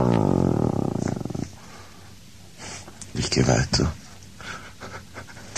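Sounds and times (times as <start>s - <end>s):
low throaty animal growl: 0.0s - 1.6s
speech: 3.4s - 4.0s.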